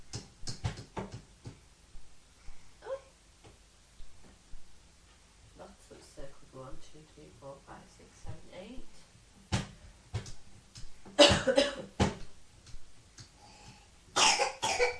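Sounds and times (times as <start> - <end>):
young boy coughing in harsh bursts: 11.2 - 11.9, 14.2 - 14.9.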